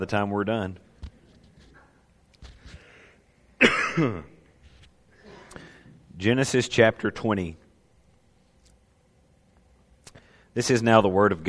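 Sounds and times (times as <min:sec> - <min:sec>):
speech: 0:00.0 - 0:00.9, 0:04.0 - 0:04.3, 0:06.2 - 0:07.6, 0:10.6 - 0:11.4
person coughing into a microphone: 0:03.6 - 0:04.4
rough throat-clearing rasp: 0:03.6 - 0:04.4.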